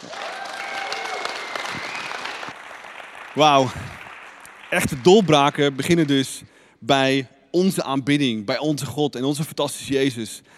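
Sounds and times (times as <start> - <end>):
faint voices and cheers: 0.0 - 2.6
audience applause: 0.0 - 6.3
speech: 3.4 - 3.9, 4.7 - 10.5.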